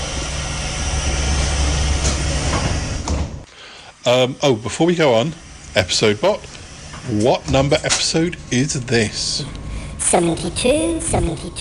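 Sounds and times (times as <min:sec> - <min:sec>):
train rolling along the tracks heard from inside a carriage: 0:00.0 - 0:03.4, 0:06.5 - 0:11.5
speech: 0:04.0 - 0:11.5.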